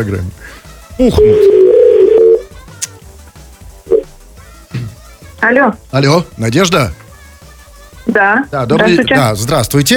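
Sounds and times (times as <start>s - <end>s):
speech: 0.0s - 1.8s, 5.4s - 7.0s, 8.1s - 9.9s
telephone dial tone: 1.1s - 2.4s.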